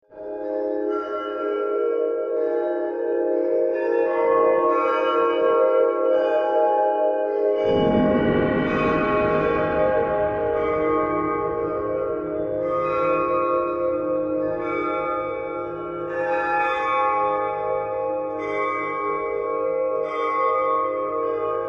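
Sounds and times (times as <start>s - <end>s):
chimes: 1.0s - 20.7s
dreamy tonal drone texture: 1.1s - 21.6s
bells: 4.4s - 21.6s
gongs: 7.6s - 16.3s.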